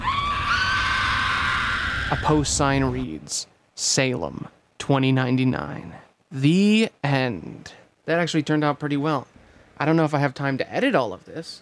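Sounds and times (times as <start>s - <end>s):
loud sustained high-pitched scream: 0.0s - 3.0s
faint noisy backdrop: 0.0s - 11.6s
speech: 2.1s - 11.6s.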